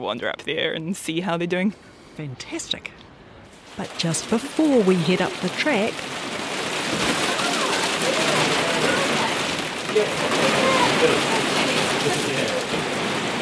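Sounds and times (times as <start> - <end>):
speech: 0.0 - 3.0, 3.8 - 7.2, 10.0 - 11.4
heavy hail pelting down on Anchor Island in Fiordland: 3.6 - 13.3.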